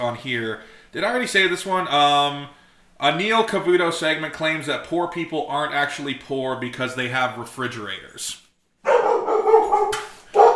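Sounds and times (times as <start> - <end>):
speech: 0.0 - 8.4
dogs barking: 8.8 - 10.5.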